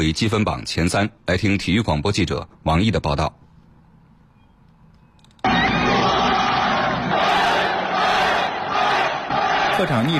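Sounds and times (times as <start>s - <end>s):
speech: 0.0s - 3.4s, 9.8s - 10.1s
football fans roaring and cheering after an away comeback win: 5.4s - 10.1s.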